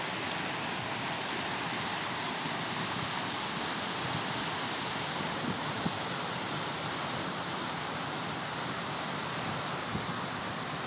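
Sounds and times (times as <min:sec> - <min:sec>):
creek rushing: 0:00.0 - 0:10.8.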